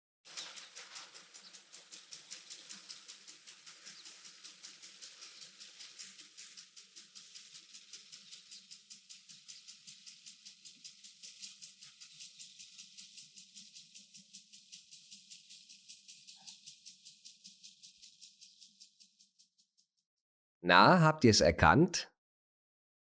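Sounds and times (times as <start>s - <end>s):
garden water sprinkler spraying: 0.3s - 19.2s
speech: 20.7s - 22.1s.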